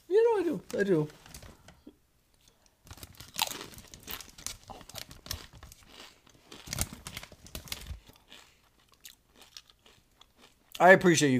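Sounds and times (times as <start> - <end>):
speech: 0.6 - 1.2, 10.8 - 11.3
person crunchily chewing baked barbecue chips: 2.4 - 10.8.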